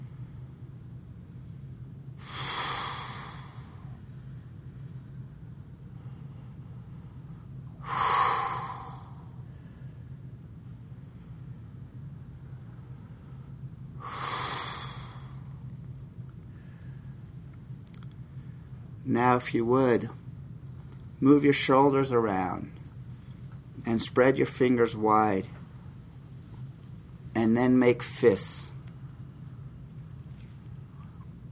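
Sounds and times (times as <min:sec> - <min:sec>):
deep breaths with forceful breathy exhales: 0:01.5 - 0:10.2, 0:13.0 - 0:15.6
speech: 0:19.1 - 0:20.2, 0:21.2 - 0:22.8, 0:23.9 - 0:25.6, 0:27.6 - 0:28.7.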